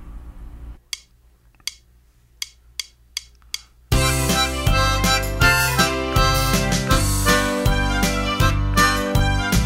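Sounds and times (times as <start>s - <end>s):
harmonica tune: 3.9s - 9.6s.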